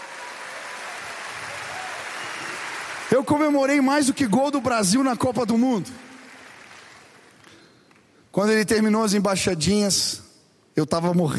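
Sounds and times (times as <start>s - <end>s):
congregation applauding at a church service: 0.0s - 8.3s
speech: 3.1s - 6.1s, 8.4s - 10.2s, 10.8s - 11.3s.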